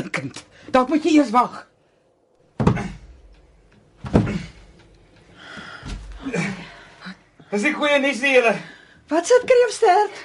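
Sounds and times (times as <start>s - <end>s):
speech: 0.2s - 1.7s, 7.5s - 10.2s
heavy door thudding against fallen heavy object: 2.6s - 3.1s, 4.0s - 4.9s.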